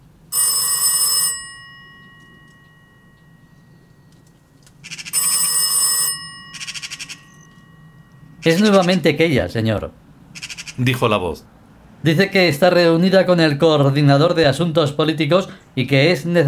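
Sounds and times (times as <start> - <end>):
faint low hum: 0.0 - 16.4
telephone bell ringing: 0.3 - 9.2
speech: 8.4 - 10.0, 10.8 - 16.4.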